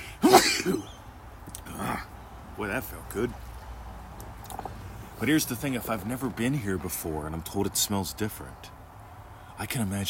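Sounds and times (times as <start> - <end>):
sneeze: 0.2 - 0.9
speech: 2.6 - 3.5, 5.2 - 8.8, 9.6 - 10.0.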